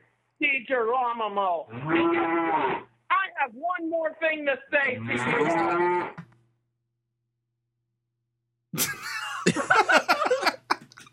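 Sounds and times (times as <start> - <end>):
speech: 0.4 - 6.2
electronically processed cow moo: 1.7 - 2.9, 4.8 - 6.3
laughter: 8.8 - 11.1.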